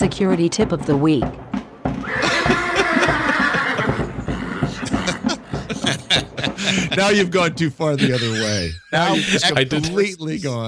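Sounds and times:
speech: 0.0 - 2.3, 6.7 - 10.6
horse neighing with a long quavering whinny: 2.0 - 5.7
horse snorts and breathy nickers: 2.0 - 6.6
laughter: 2.0 - 10.6.

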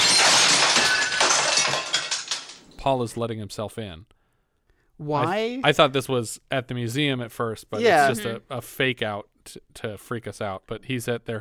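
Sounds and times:
rocks crashing through glass windows of a home: 0.0 - 2.8
speech: 2.8 - 4.2, 5.0 - 11.3.

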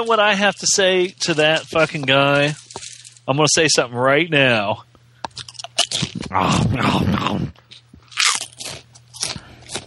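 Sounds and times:
speech: 0.0 - 4.9, 6.3 - 7.5
crunching of Fritos Scoops corn chips: 0.1 - 3.2, 5.3 - 6.6, 7.7 - 9.8
low grunting or breathy noise between bites: 6.2 - 7.6.

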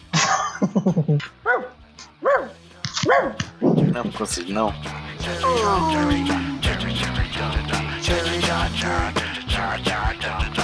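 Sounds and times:
speech: 0.8 - 10.6
dog barking: 1.4 - 3.4.

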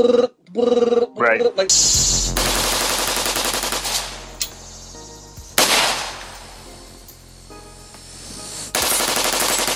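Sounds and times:
speech: 0.0 - 2.8
rapid gunfire from a rifle fitted with a bump stock: 2.4 - 4.2, 8.8 - 9.7.

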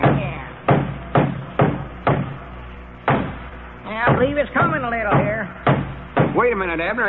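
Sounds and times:
heavy thuds of hitting a wooden board to knock it loose: 0.0 - 2.4, 3.0 - 3.4, 4.0 - 6.4
speech: 4.2 - 5.4, 6.4 - 7.0.

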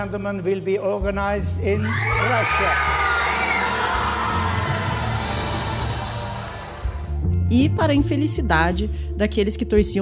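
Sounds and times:
speech: 0.0 - 3.2, 7.5 - 9.9
large crowd of Russians cheering and shouting at a host announcement: 1.7 - 7.3.

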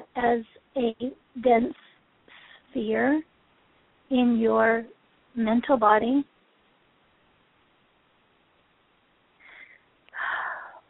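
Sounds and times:
speech: 0.2 - 1.8, 2.8 - 3.3, 4.1 - 6.3
deep inhale and exhale during a guided meditation: 9.4 - 10.8.

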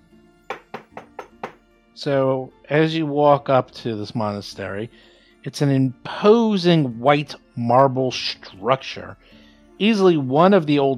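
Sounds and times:
firm knocks on the wooden door of a monastery: 0.5 - 1.6
speech: 2.0 - 10.9.

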